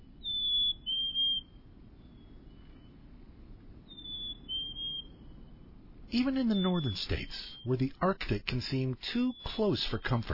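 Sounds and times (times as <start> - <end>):
black-capped chickadee whistled two-note song: 0.0 - 2.6, 3.9 - 5.4, 6.2 - 8.0, 9.1 - 10.3
low background rumble: 0.0 - 10.3
speech: 6.1 - 10.3.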